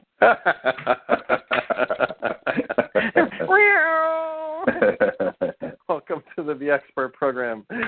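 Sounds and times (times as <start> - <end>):
speech: 0.2 - 1.2, 6.4 - 7.8
laughter: 0.2 - 3.7, 4.6 - 5.8
person imitating a cat with chattering noises and a long meow: 3.5 - 4.8.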